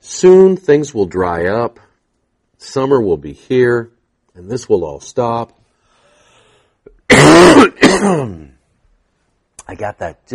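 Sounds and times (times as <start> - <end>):
speech: 0.2 - 1.8, 2.6 - 5.6, 7.6 - 8.5, 9.7 - 10.3
person clearing throat loudly and roughly: 6.9 - 8.6.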